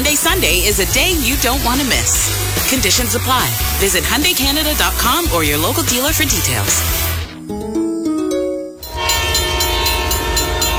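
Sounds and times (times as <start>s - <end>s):
speech: 0.0s - 7.8s
passenger train multi-tone horn: 8.8s - 10.7s.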